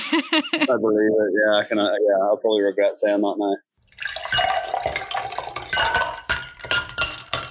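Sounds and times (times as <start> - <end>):
speech: 0.1 - 3.8
glass clinking: 3.8 - 7.4
water pouring into a glass: 3.8 - 7.4.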